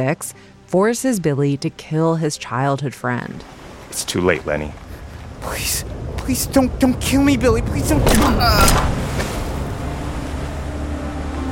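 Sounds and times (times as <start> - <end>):
speech: 0.0 - 4.8, 5.4 - 8.9
ocean surf roaring on a beach: 3.2 - 11.4.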